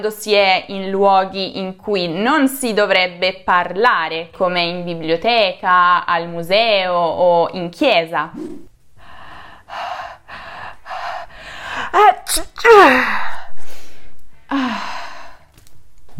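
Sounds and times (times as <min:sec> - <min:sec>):
speech: 0:00.0 - 0:08.7, 0:11.9 - 0:13.3, 0:14.5 - 0:14.9
person acting out a sneeze: 0:12.0 - 0:13.2.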